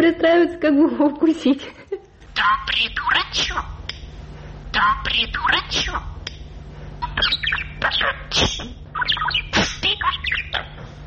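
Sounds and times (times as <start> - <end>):
faint steady low hum: 0.0 - 11.0
speech: 0.1 - 1.8, 2.4 - 3.8, 4.8 - 6.1, 7.2 - 10.6
small caged pet bird chirping and squawking: 2.4 - 4.1, 4.7 - 11.0.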